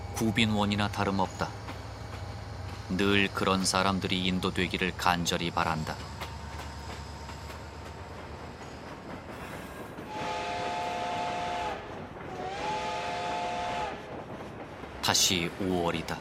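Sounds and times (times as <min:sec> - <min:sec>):
train rumbling along: 0:00.0 - 0:16.1
speech: 0:00.2 - 0:01.6, 0:02.9 - 0:06.2, 0:15.1 - 0:16.1
train long whistle blasts: 0:10.1 - 0:14.0.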